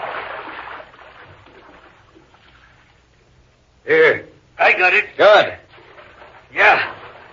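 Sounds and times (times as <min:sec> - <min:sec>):
person in boots wading through shallow water: 0:00.0 - 0:03.1, 0:05.7 - 0:07.3
speech: 0:04.8 - 0:05.6.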